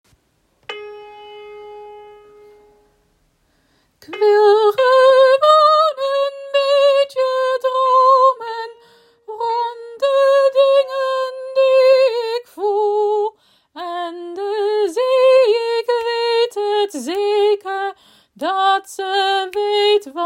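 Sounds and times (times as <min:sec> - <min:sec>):
soprano singing a Dutch song: 0:04.0 - 0:20.2.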